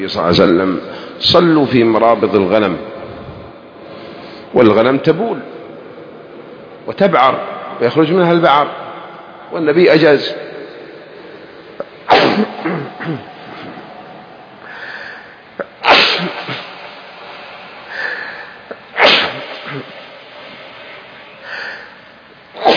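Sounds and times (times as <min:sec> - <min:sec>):
speech: 0:00.0 - 0:03.0, 0:04.5 - 0:05.5, 0:06.9 - 0:08.8, 0:09.5 - 0:10.4
person sneezing: 0:12.1 - 0:13.9, 0:15.6 - 0:16.9, 0:17.9 - 0:20.1, 0:22.6 - 0:22.7
person sniffing: 0:14.6 - 0:16.7, 0:17.9 - 0:20.0, 0:21.4 - 0:22.0.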